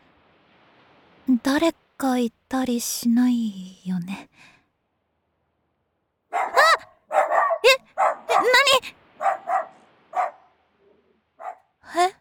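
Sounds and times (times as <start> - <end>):
speech: 1.3 - 4.6
stray dog barking: 6.3 - 10.6, 11.4 - 11.8.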